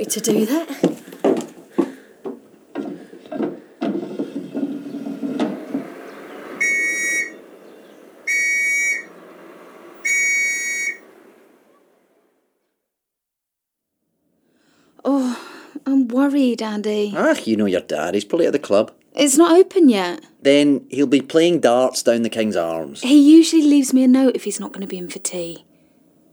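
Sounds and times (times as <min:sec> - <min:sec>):
speech: 0:00.0 - 0:00.9, 0:16.3 - 0:25.7
clattering and rustling: 0:00.0 - 0:06.6
shrill whistle blasts blown out of an open window: 0:04.8 - 0:11.9.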